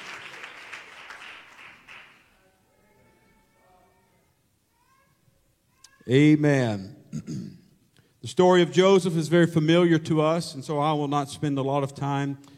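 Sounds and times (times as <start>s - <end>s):
room full of people clapping in applause: 0.0s - 2.3s
speech: 6.1s - 7.4s, 8.2s - 12.5s.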